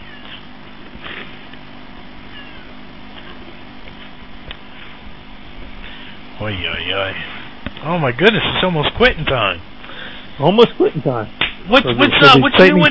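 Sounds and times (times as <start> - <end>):
steady dense hum: 0.0 - 12.8
cat meowing loudly with drawn-out yowling cries: 2.3 - 2.7
speech: 6.4 - 9.7, 10.4 - 12.8.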